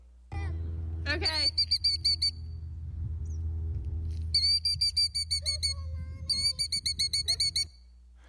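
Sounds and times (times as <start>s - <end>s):
steady low rumble: 0.0s - 7.6s
speech: 1.1s - 1.8s
agitated bird giving shrill alarm calls: 1.4s - 2.4s, 4.4s - 7.7s.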